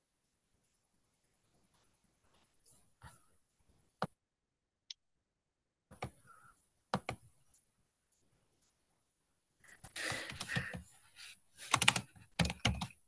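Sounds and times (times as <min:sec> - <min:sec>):
typing on a computer keyboard: 0:10.0 - 0:10.9, 0:11.6 - 0:13.0.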